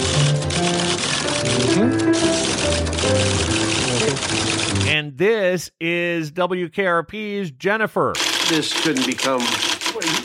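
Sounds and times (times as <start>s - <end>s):
rapid keyboard typing by a typist on a TV talk show: 0.0s - 5.0s, 8.2s - 10.2s
speech: 5.1s - 10.2s.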